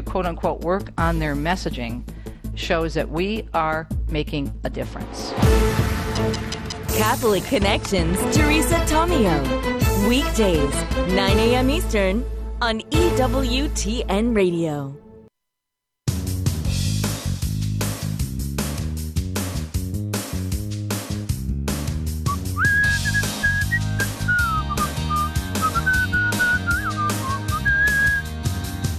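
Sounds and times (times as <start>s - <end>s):
upbeat instrumental track with steady drums: 0.0s - 14.4s, 16.1s - 28.9s
speech: 0.1s - 15.0s
person whistling a wavering melody: 22.2s - 28.3s.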